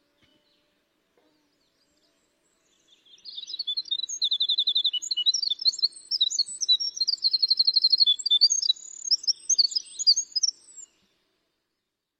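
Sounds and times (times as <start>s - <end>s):
winter wren singing a flute-like song: 2.6s - 11.1s.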